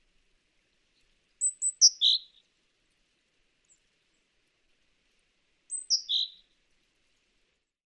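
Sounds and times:
Parus major great tit calls: 1.4s - 2.4s, 5.7s - 6.4s.

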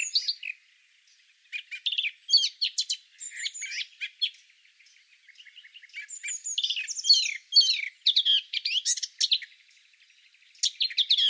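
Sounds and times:
Eurasian blackcap singing: 0.0s - 11.2s.

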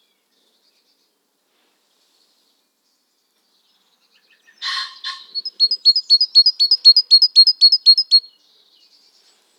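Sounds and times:
Great tit calling: 4.6s - 8.2s.

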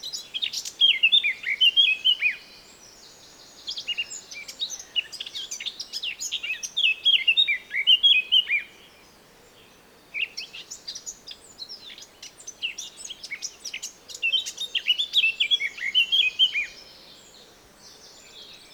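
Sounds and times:
Eurasian blackcap Sylvia atricapilla song: 0.0s - 2.4s, 3.6s - 8.7s, 10.2s - 16.8s.

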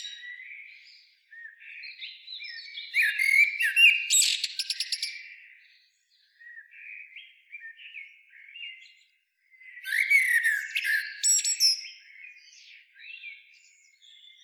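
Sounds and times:
Eurasian blackbird Turdus merula fluty warble: 0.0s - 14.4s.

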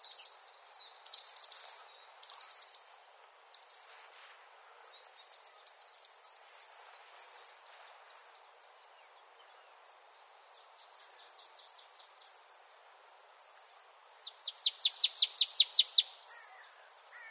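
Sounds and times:
Marsh Tit Poecile palustris chipping calls: 14.5s - 16.2s.

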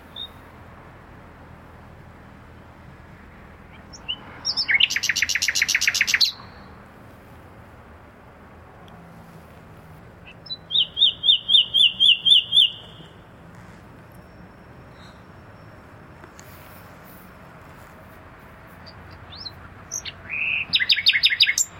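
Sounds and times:
common nightingale Luscinia megarhynchos song: 0.0s - 0.6s, 3.6s - 6.9s, 10.0s - 21.7s.

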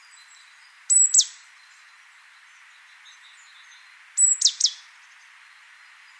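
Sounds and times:
Great tit (Parus major) whistled calls with sharp downslurred notes: 0.9s - 1.4s, 4.2s - 4.8s.

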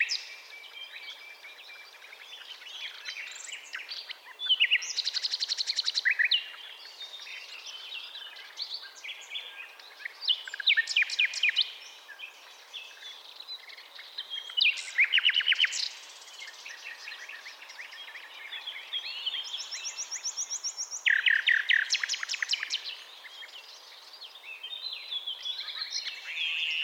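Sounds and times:
common nightingale Luscinia megarhynchos singing: 0.0s - 26.8s.

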